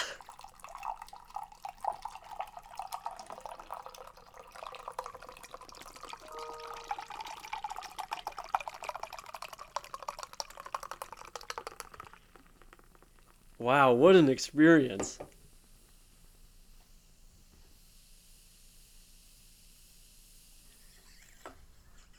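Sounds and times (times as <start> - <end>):
chilled Pepsi poured hard from an upside-down can into a glass: 0.0 - 15.0
dense crackling fizz of Pepsi bubbles: 0.0 - 15.0
speech: 13.6 - 15.3.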